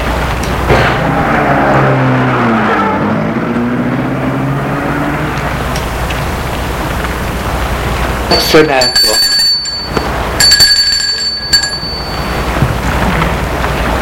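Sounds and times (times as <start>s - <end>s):
car engine humming while pulling away: 0.0s - 14.0s
speech: 8.5s - 9.2s.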